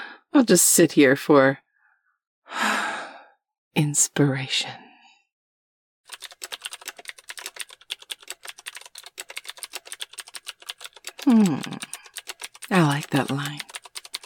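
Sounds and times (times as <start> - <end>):
speech: 0.4 - 1.6, 3.8 - 4.8, 11.3 - 11.9, 12.7 - 13.7
rapid typing on a computer keyboard: 6.1 - 14.2.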